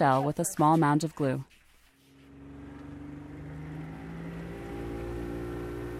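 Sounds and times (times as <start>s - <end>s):
speech: 0.0s - 1.6s
boat motor droning heading out into the bay: 2.0s - 5.9s.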